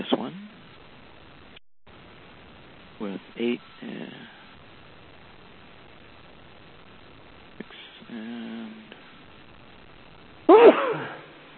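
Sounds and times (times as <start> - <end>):
speech: 3.0 - 4.4
person sneezing: 10.5 - 11.3.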